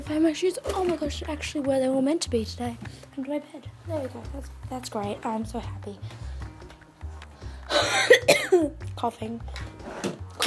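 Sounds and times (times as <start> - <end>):
speech: 0.1 - 6.2, 7.8 - 10.2
throat clearing: 7.7 - 8.7
harsh coughing: 7.7 - 8.8.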